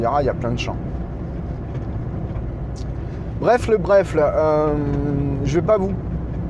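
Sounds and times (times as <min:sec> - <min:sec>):
speech: 0:00.0 - 0:01.0, 0:03.4 - 0:06.0
tractor heavy diesel engine rumbling as it drives past fields: 0:00.0 - 0:06.4.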